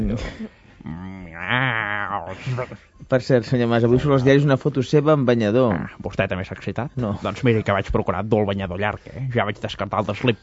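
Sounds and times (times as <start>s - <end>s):
speech: 0.0s - 10.4s
person imitating a goat bleating: 0.9s - 2.8s.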